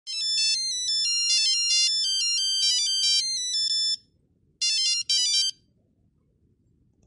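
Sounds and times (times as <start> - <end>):
Nokia 6210 mobile phone: 0.1 - 4.0, 4.6 - 5.7.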